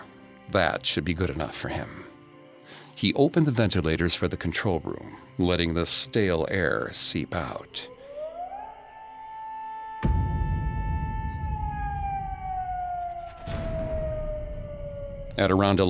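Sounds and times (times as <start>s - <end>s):
speech: 0.5s - 2.1s, 2.7s - 8.0s, 15.4s - 15.8s
air raid siren wailing: 7.8s - 15.8s
low rumbling background: 10.0s - 15.8s.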